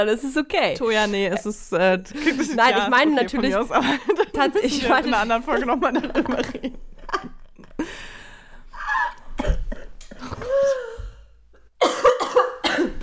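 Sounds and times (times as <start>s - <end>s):
speech: 0.0s - 6.9s
laughter: 2.1s - 7.8s
person gasping: 7.8s - 8.8s
person coughing while laughing: 9.4s - 11.0s, 11.8s - 13.0s.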